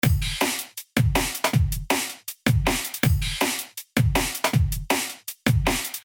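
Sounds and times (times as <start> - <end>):
dry drums tail: 0.0 - 6.0.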